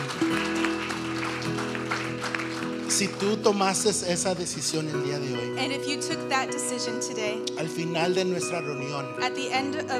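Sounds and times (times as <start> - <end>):
crowd at a religious service applauding: 0.0 - 5.2
speech: 2.9 - 9.9.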